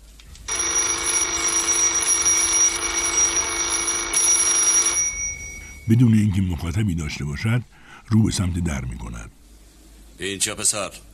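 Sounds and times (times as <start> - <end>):
electric desk call bell ringing while held down: 0.5 - 6.1
speech: 5.9 - 9.4, 10.2 - 11.1.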